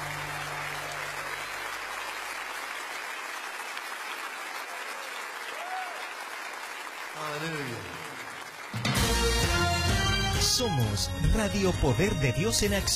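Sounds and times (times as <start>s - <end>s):
crowd applause: 0.0s - 10.1s
speech: 10.5s - 12.9s.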